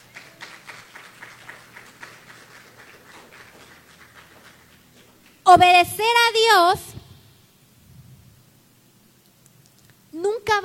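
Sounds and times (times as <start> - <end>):
crowd applauding after a prayer: 0.0 - 5.4
speech: 5.5 - 6.9.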